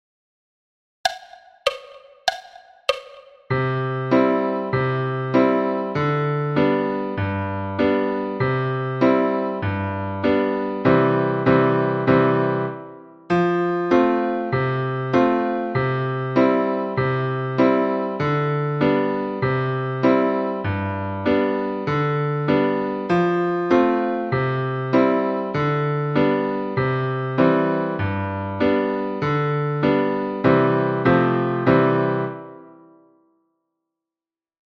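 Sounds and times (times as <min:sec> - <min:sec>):
polka piano at 98 bpm: 0:01.1 - 0:32.8.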